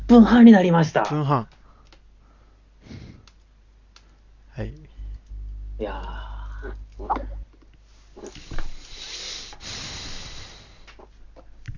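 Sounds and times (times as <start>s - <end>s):
speech: 0.1s - 1.6s, 4.6s - 4.8s, 5.8s - 7.3s
low rumbling noise: 4.6s - 8.8s
deep breath drawn in: 8.5s - 10.9s.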